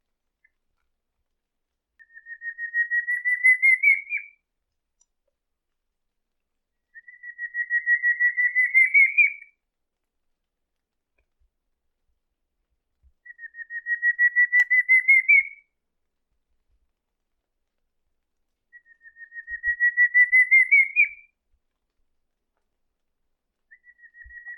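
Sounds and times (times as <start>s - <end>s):
pinto do mato singing: 2.0s - 4.4s, 6.9s - 9.5s, 13.2s - 15.7s, 18.7s - 21.3s, 23.7s - 24.5s.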